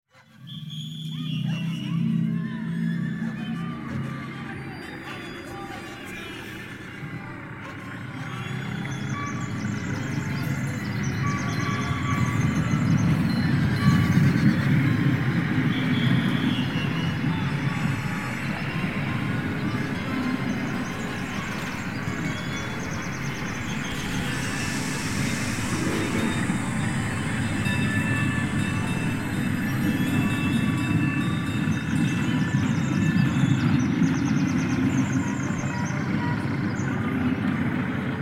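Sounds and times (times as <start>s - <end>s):
big city ambience: 0.1s - 38.1s.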